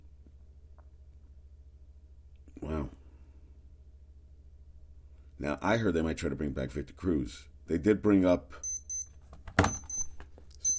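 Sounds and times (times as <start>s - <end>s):
speech: 5.4s - 8.7s
electronic alarm beeps: 8.6s - 10.7s.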